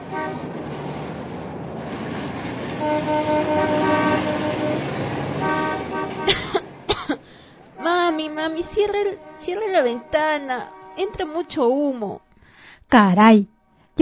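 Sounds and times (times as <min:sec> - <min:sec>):
car horn honking: 0:00.0 - 0:00.6, 0:02.8 - 0:12.3
arriving car engine drone: 0:00.0 - 0:11.4
speech: 0:08.4 - 0:12.3, 0:12.9 - 0:14.0.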